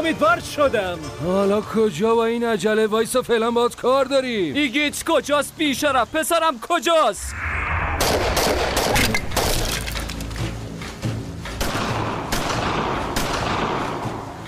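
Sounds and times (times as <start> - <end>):
speech: 0.0 - 7.5
sustained gunfire with rapid bursts: 8.0 - 9.9, 11.6 - 14.3.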